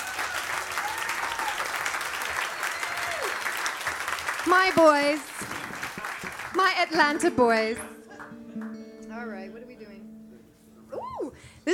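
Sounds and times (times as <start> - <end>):
large audience clapping: 0.0 - 8.8
whoops and whistles from the crowd: 2.4 - 3.3
speech: 4.4 - 5.6, 6.6 - 7.9.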